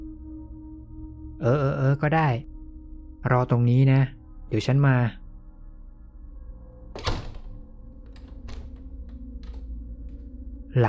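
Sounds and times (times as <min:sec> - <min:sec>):
speech: 0:01.4 - 0:02.5, 0:03.2 - 0:05.2
room door at the back of a shop closing with a thud: 0:07.0 - 0:09.6.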